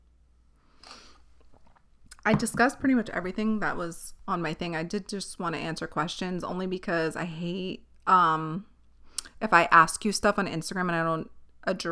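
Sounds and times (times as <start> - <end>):
person slurping a sip of water: 0.8 - 2.2
speech: 2.3 - 8.7, 9.4 - 11.9.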